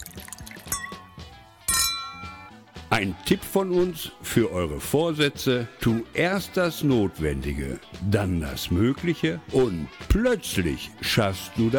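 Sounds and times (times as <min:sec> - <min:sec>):
glasses clinking in a New Year toast: 0:00.3 - 0:02.5
speech: 0:02.9 - 0:11.7.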